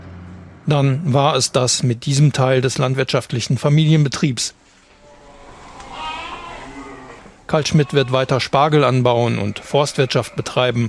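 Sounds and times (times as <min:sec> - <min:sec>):
soft outdoor hum: 0:00.0 - 0:10.8
speech: 0:00.7 - 0:04.6, 0:07.5 - 0:10.8
sheep from a family farm flock bleating: 0:04.9 - 0:10.8.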